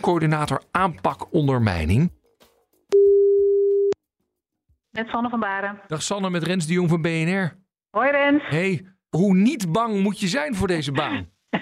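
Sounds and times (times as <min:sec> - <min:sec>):
speech: 0:00.0 - 0:02.2, 0:05.0 - 0:11.5
telephone ringback tone while placing a call: 0:03.0 - 0:04.0.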